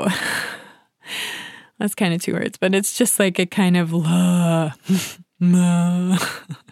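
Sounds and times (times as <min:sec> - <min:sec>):
speech: 0:00.0 - 0:00.5, 0:01.8 - 0:06.7
voice imitating a reluctant groan: 0:04.0 - 0:06.6.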